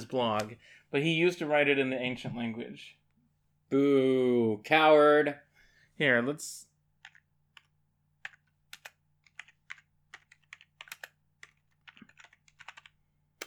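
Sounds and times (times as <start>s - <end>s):
speech: 0.1s - 3.0s, 3.7s - 5.4s, 6.0s - 6.7s
typing on a computer keyboard: 7.0s - 13.4s.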